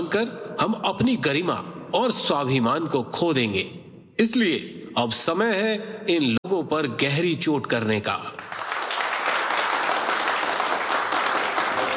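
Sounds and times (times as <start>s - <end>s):
speech: 0.1s - 8.3s
large crowd applauding: 8.4s - 11.9s.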